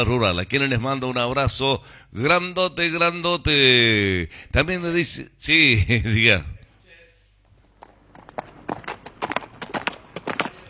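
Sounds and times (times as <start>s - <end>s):
speech: 0.0s - 6.5s
horse hooves clip-clopping on a hard surface across a plaza: 7.6s - 10.6s.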